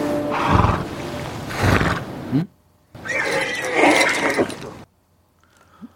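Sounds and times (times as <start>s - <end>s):
horse neighing: 0.3s - 0.9s, 3.0s - 4.8s.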